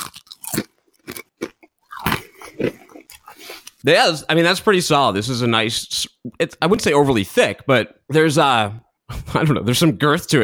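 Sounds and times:
crispy chip bitten and chewed against a microphone: 0:00.0 - 0:03.8
speech: 0:03.8 - 0:10.4.

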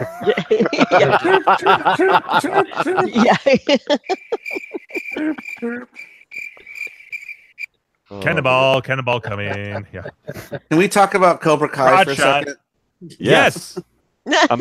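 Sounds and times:
chuckling laughter: 0:00.0 - 0:06.0, 0:09.1 - 0:10.7, 0:13.4 - 0:14.5
speech: 0:00.2 - 0:04.6, 0:08.1 - 0:14.5
crickets chirping: 0:01.2 - 0:07.7.

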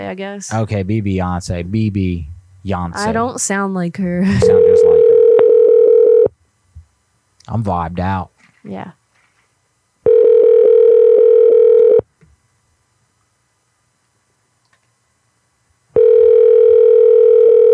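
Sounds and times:
speech: 0:00.0 - 0:05.1, 0:07.5 - 0:09.0
ringback tone of an unanswered phone call being forwarded: 0:04.4 - 0:06.3, 0:10.1 - 0:12.0, 0:16.0 - 0:17.7.

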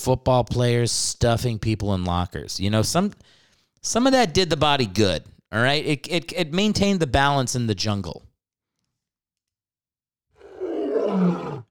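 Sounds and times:
speech: 0:00.0 - 0:08.3
deep rumbling lion roar sound effect: 0:10.4 - 0:11.6.

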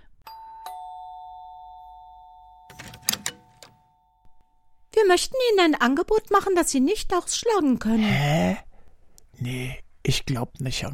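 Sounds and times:
doorbell chiming: 0:00.3 - 0:04.3
speech: 0:05.1 - 0:08.7, 0:09.4 - 0:10.9.

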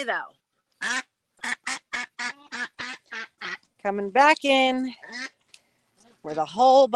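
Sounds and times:
speech: 0:00.0 - 0:01.1, 0:03.8 - 0:05.3, 0:06.2 - 0:06.9
angry duck quacking as her egg is being collected: 0:00.8 - 0:03.6, 0:05.0 - 0:05.4.

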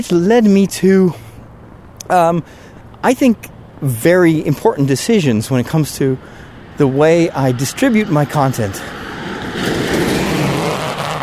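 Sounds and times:
speech: 0:00.0 - 0:01.2, 0:02.1 - 0:09.0
car passing by, possibly pulling a trailer: 0:06.4 - 0:11.2.

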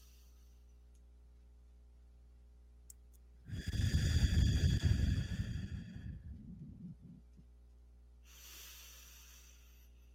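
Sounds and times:
breathing in through nose, out through mouth: 0:00.0 - 0:00.6, 0:03.5 - 0:06.6, 0:08.2 - 0:10.1.

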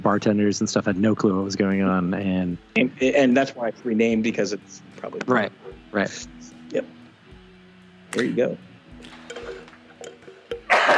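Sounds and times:
speech: 0:00.0 - 0:07.0, 0:08.1 - 0:09.2
soft murmuring vocal sounds: 0:00.0 - 0:10.9
person coughing: 0:10.7 - 0:10.9.

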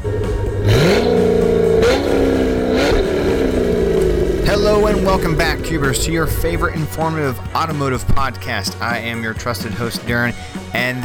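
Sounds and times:
custom wide-body pickup truck engine revving and accelerating through gears: 0:00.0 - 0:09.6
speech: 0:05.2 - 0:11.0.

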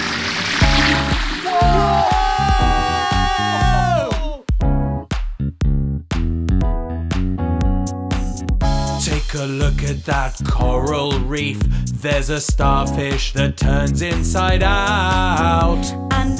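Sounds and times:
bubbly watery whoosh of cartoon submersible diving: 0:00.0 - 0:02.0
bouncy musical beat with short stabbing notes: 0:00.6 - 0:16.3
speech: 0:09.5 - 0:16.3.

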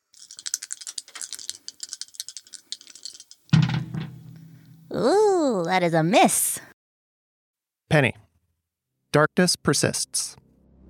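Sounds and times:
dice rattling and clattering in a cupped hand: 0:00.0 - 0:03.5
speech: 0:05.7 - 0:06.7, 0:07.9 - 0:08.2, 0:09.2 - 0:10.4.

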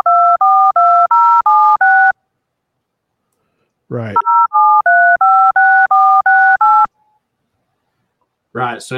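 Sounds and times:
DTMF telephone keypad dialing tones: 0:00.0 - 0:02.2, 0:04.2 - 0:06.9
speech: 0:03.9 - 0:04.3, 0:08.6 - 0:08.9.

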